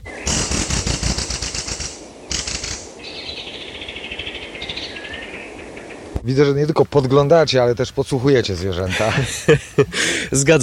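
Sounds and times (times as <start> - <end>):
rapid wing flapping: 0.0 - 3.1
speech: 6.3 - 10.6
laughter: 8.9 - 10.3.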